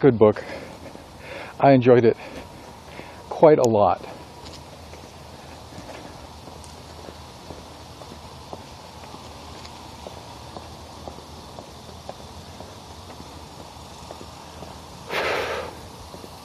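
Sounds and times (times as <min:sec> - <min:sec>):
speech: 0:00.0 - 0:00.7, 0:01.6 - 0:02.4, 0:03.4 - 0:04.1
footsteps on a morning hike: 0:00.0 - 0:16.4
breathy burst: 0:00.4 - 0:01.6, 0:15.1 - 0:15.9.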